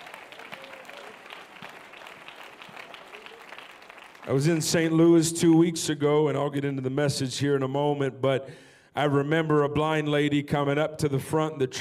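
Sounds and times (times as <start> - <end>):
crowd applauding: 0.0 - 5.7
speech: 4.3 - 11.8.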